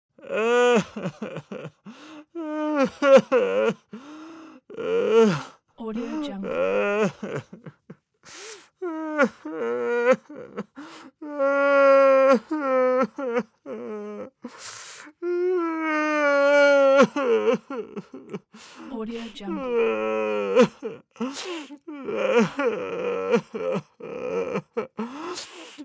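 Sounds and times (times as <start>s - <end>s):
man crying moderately: 0.2s - 3.9s, 6.0s - 8.0s, 8.8s - 14.3s, 15.6s - 18.5s, 19.1s - 25.2s.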